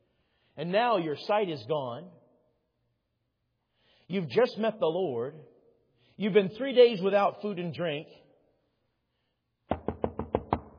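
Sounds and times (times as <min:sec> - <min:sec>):
speech: 0:00.6 - 0:02.2, 0:04.1 - 0:05.5, 0:06.2 - 0:08.2
quick sharp knocks on a door: 0:09.7 - 0:10.7.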